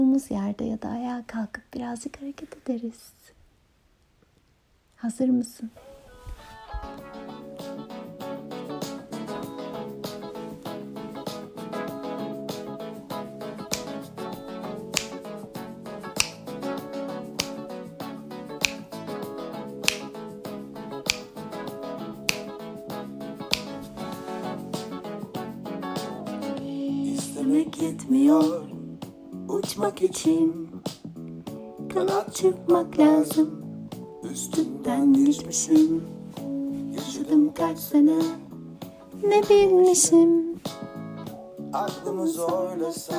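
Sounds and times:
speech: 0.0s - 3.4s, 5.0s - 5.9s, 27.9s - 28.7s, 29.8s - 30.9s, 31.9s - 33.6s, 34.6s - 36.1s, 37.3s - 38.4s, 39.2s - 40.5s, 41.7s - 43.1s
song with dense layered instrumentation: 5.9s - 30.0s, 35.8s - 37.4s, 40.6s - 43.1s
regular beat with crisp snap-like accents: 6.5s - 29.9s, 30.9s - 32.5s, 40.6s - 43.1s.

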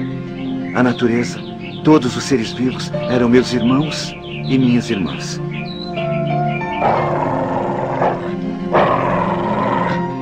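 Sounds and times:
soft tonal musical backdrop: 0.0s - 10.2s
speech: 0.7s - 5.6s, 6.8s - 7.3s
wolf growling: 6.7s - 10.2s.

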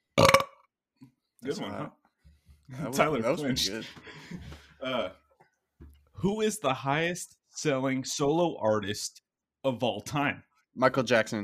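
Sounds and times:
loud burp: 0.1s - 0.7s
speech: 1.4s - 2.0s, 2.7s - 5.2s, 6.2s - 11.4s.

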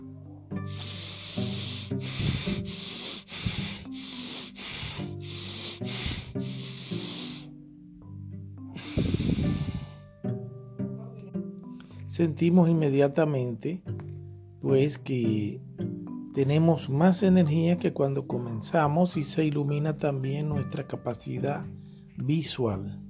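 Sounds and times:
heavy rhythmic circular breathing practice: 0.0s - 12.1s, 21.4s - 22.3s
soft tonal music: 0.0s - 23.0s
speech: 12.2s - 13.9s, 14.6s - 15.7s, 16.4s - 23.0s.

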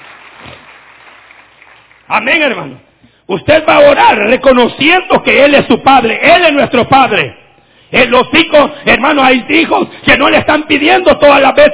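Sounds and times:
church audience applause: 0.0s - 2.1s
speech: 2.1s - 11.7s.

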